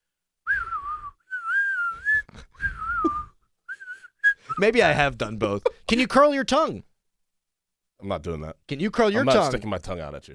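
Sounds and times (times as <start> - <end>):
person whistling: 0.5 - 4.6
speech: 4.6 - 6.9, 8.0 - 10.3.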